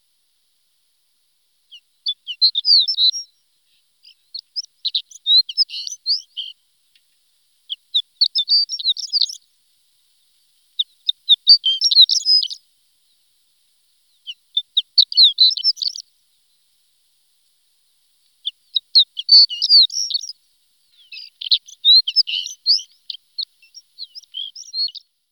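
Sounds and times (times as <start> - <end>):
horned lark singing jingling notes and twittering trill: 1.7 - 7.0, 7.7 - 9.4, 10.8 - 13.2, 14.1 - 16.1, 18.4 - 25.3.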